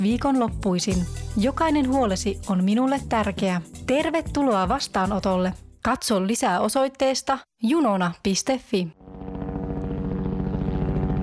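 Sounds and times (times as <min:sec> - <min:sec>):
speech: 0:00.0 - 0:09.0
low-flying helicopter doing power-line tree trimming: 0:09.0 - 0:11.2.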